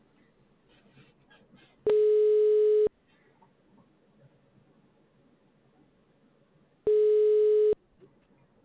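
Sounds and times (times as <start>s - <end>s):
buzzy telephone line tones: 1.9s - 2.9s, 6.9s - 7.8s.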